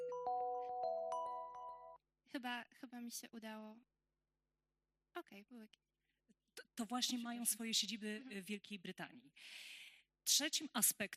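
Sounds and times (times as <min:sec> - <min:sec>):
phone ringtone for an incoming call: 0:00.0 - 0:02.0
speech: 0:02.3 - 0:03.9, 0:05.2 - 0:05.8, 0:06.6 - 0:11.1.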